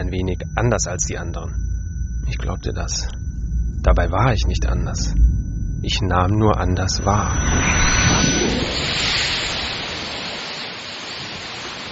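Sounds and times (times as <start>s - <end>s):
speech: 0.0s - 3.2s, 3.8s - 9.3s
sea waves breaking on shore: 8.6s - 11.8s.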